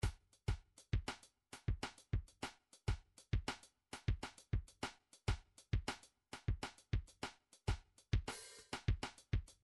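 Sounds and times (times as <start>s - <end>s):
MIDI Latin drums: 0.0s - 9.6s.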